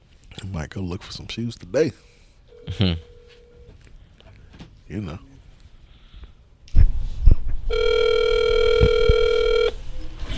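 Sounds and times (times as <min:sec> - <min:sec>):
speech: 0:00.4 - 0:03.1, 0:04.9 - 0:05.3
phone ringback tone from earpiece on an outgoing call: 0:02.5 - 0:03.7, 0:07.7 - 0:09.8.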